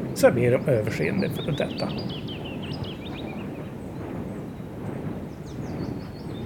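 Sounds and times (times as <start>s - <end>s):
heavy low-frequency roar of wind turbines at a wind power industrial area in a forest: 0.0s - 6.4s
small birds chirping: 0.1s - 4.7s, 5.3s - 6.4s
speech: 0.2s - 2.4s.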